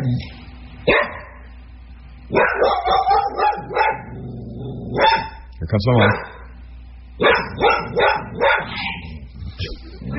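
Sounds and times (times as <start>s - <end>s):
faint steady hum: 0.0s - 10.1s
dog barking: 0.9s - 1.5s, 2.3s - 4.1s, 4.9s - 6.6s, 7.2s - 9.2s
speech: 5.7s - 6.3s.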